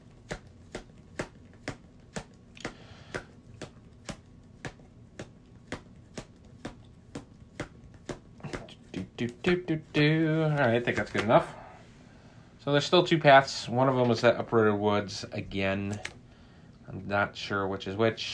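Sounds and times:
deck of cards shuffling: 0.1 - 11.6, 15.7 - 16.2
speech: 9.2 - 11.6, 12.7 - 16.2, 16.9 - 18.3.

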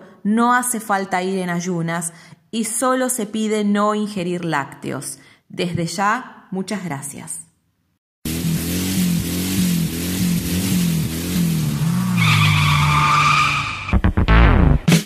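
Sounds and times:
speech: 0.2 - 7.4
racing engine revving: 8.3 - 14.9
tires squealing: 11.4 - 14.1.

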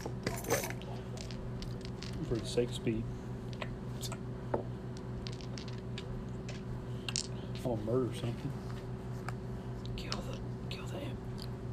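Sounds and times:
faint steady hum: 0.0 - 11.7
small hard objects clattering onto a table: 0.2 - 2.6, 5.0 - 7.3
speech: 2.3 - 3.2, 7.6 - 8.7.

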